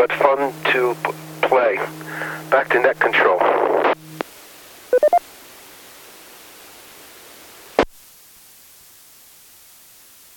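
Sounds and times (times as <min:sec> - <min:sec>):
speech: 0:00.0 - 0:03.8
steady hiss of radio static: 0:00.0 - 0:10.3
radio squelch noise: 0:00.1 - 0:04.0, 0:05.0 - 0:05.2
touch-tone keypad beeps dialing an extension on a phone plugged into a router: 0:05.0 - 0:05.2.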